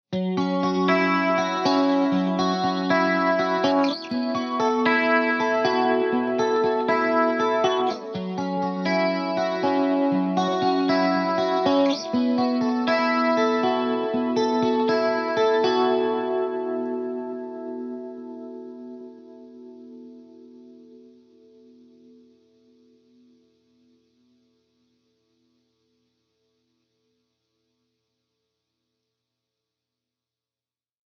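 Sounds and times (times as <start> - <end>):
clean electric guitar loop: 0.1 - 24.5.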